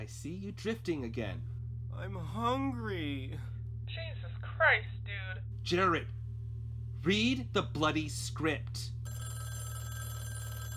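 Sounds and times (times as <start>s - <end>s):
speech: 0.0s - 6.2s, 7.0s - 9.0s
telephone ringing with a steady electronic tone: 9.0s - 10.7s.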